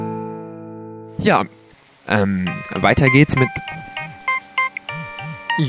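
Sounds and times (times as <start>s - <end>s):
speech: 1.3s - 3.8s
mobile phone ringing with a bright electronic melody: 2.5s - 5.6s.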